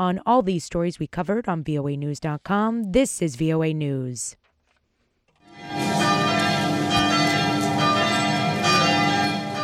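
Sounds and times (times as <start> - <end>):
speech: 0.0 - 4.4
church bells ringing on a Sunday in a rural French town: 5.4 - 9.6.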